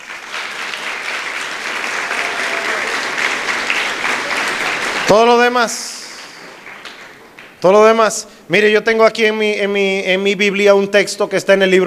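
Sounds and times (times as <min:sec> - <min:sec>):
audience applauding: 0:00.0 - 0:07.7
speech: 0:05.1 - 0:06.0, 0:07.6 - 0:11.8.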